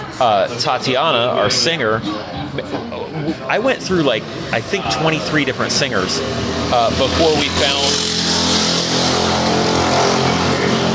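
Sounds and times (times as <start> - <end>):
speech: 0.2 - 8.1
motorbike engine roaring: 3.3 - 10.9.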